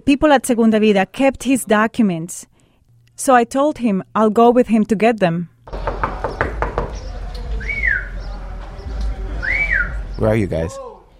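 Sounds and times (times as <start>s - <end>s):
speech: 0.0s - 2.5s, 3.2s - 5.8s, 10.2s - 10.9s
person rapping on a door: 5.7s - 7.2s
brief rising whistle: 7.6s - 8.2s, 9.4s - 10.1s.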